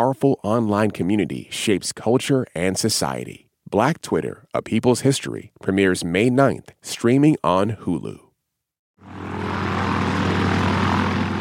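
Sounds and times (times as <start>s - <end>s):
speech: 0.0s - 8.2s
airplane engine droning in flight: 9.0s - 11.4s.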